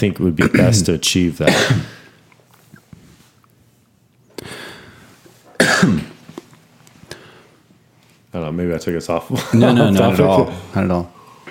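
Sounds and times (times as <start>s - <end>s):
speech: 0.0s - 2.0s, 5.8s - 6.1s, 8.4s - 11.2s
person coughing from a tickle in the throat: 1.4s - 2.1s, 5.5s - 6.2s.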